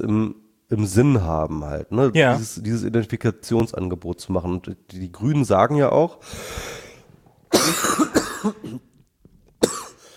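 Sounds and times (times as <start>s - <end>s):
speech: 0.0s - 6.8s, 7.5s - 8.9s
person coughing in a coughing fit: 7.5s - 8.9s, 9.6s - 10.1s.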